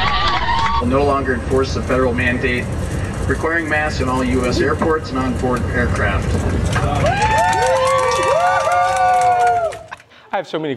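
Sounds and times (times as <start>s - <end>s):
crowd of airplane passengers cheering with whoops and shouts: 0.0s - 1.1s, 6.7s - 10.1s
speech: 0.8s - 7.3s, 10.3s - 10.7s
dense chatter of passengers: 4.1s - 8.6s.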